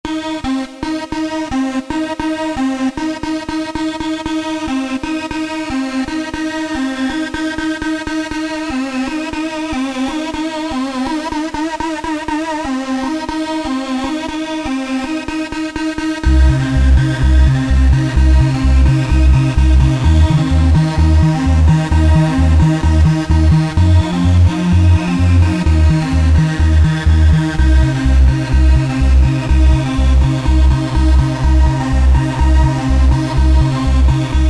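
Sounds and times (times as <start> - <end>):
fat rave music: 0.1 - 34.4.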